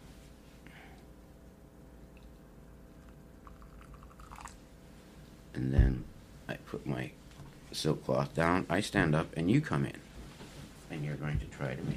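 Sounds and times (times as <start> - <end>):
hot water pouring into a tea bowl: 3.4 - 4.6
speech: 5.6 - 6.1, 6.7 - 10.0, 10.9 - 11.9.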